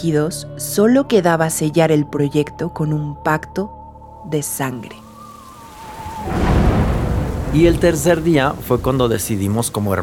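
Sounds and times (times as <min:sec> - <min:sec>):
speech: 0:00.0 - 0:05.0, 0:07.5 - 0:10.0
steady rain at night: 0:05.0 - 0:10.0
low thunder rumbling: 0:05.4 - 0:10.0.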